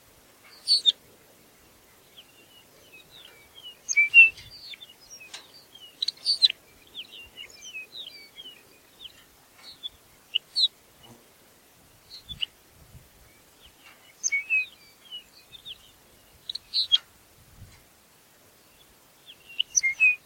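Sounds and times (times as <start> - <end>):
Lapland longspur Calcarius lapponicus calls: 0.5 - 1.0, 1.7 - 10.8, 13.4 - 17.1, 19.2 - 20.2.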